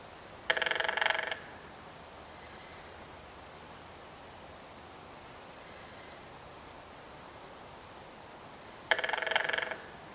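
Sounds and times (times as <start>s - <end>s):
faint background hiss: 0.0s - 10.1s
red-headed woodpecker drumming: 0.5s - 1.6s, 8.9s - 10.0s.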